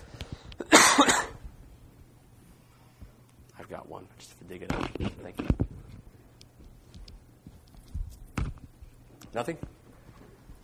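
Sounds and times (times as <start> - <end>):
faint breathy sounds: 0.0 - 0.6, 2.4 - 3.2
harsh cough: 0.6 - 1.4
speech: 3.9 - 5.6, 9.3 - 9.8.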